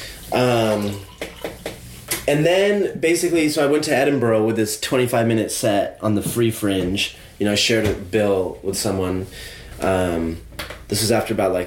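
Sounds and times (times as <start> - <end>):
water pouring into a glass: 0.2 - 1.6
speech: 0.3 - 1.7, 2.3 - 11.6.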